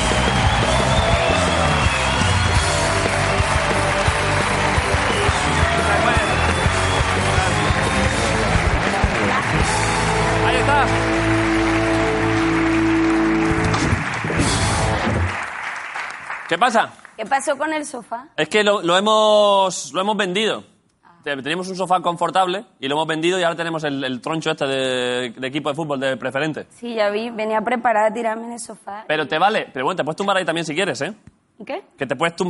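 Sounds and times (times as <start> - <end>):
band playing: 0.0 - 15.5
studio audience cheering: 0.0 - 16.4
studio audience applause: 0.0 - 17.2
speech: 16.6 - 32.4.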